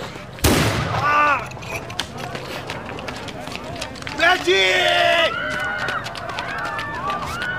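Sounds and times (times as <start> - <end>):
murmur of activity: 0.0 - 7.5
loud gunshot: 0.4 - 1.2
speech: 4.4 - 5.0.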